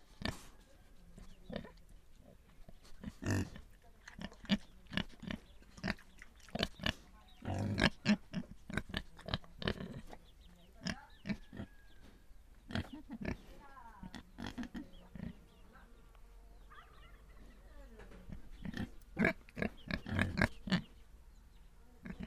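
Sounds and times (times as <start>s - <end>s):
pigs grunting and snuffling: 0.0s - 11.7s, 12.6s - 15.6s, 18.2s - 21.0s, 22.0s - 22.2s.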